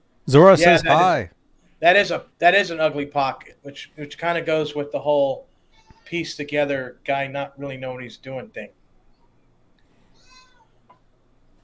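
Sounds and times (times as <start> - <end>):
low hum: 0.0 - 11.6
speech: 0.3 - 5.5, 6.1 - 8.8
cat meowing: 10.2 - 10.8.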